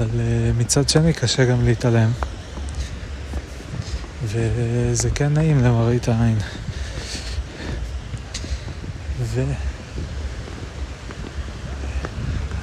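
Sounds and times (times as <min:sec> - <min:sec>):
gentle sea waves lapping at the shoreline of calm water: 0:00.0 - 0:12.6
steady wind: 0:00.0 - 0:12.6
speech: 0:00.1 - 0:02.4, 0:04.3 - 0:06.7, 0:09.3 - 0:10.1.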